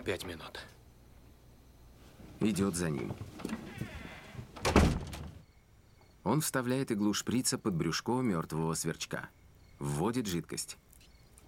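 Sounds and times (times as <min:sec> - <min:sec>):
speech: 0:00.0 - 0:00.7, 0:02.4 - 0:03.9, 0:06.3 - 0:10.8
door being opened indoors: 0:02.8 - 0:05.4.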